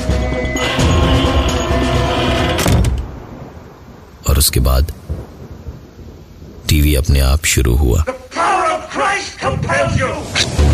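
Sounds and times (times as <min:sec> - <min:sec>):
dense creaking: 0:00.4 - 0:03.2
door slamming shut: 0:02.4 - 0:03.2
speech: 0:04.4 - 0:05.0, 0:06.7 - 0:10.6.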